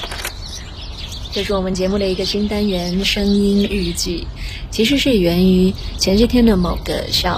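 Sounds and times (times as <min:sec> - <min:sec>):
birds chirping in trees: 0:00.0 - 0:07.3
speech: 0:01.3 - 0:07.3.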